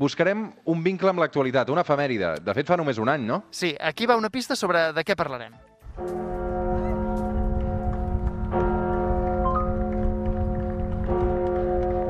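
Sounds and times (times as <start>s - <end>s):
speech: 0.0s - 6.4s
large church bells ringing: 5.9s - 12.0s.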